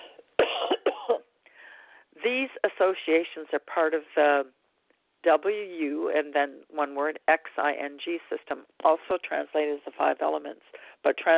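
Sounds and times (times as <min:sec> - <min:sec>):
person coughing: 0:00.0 - 0:01.2
speech: 0:02.2 - 0:04.6, 0:05.2 - 0:11.3.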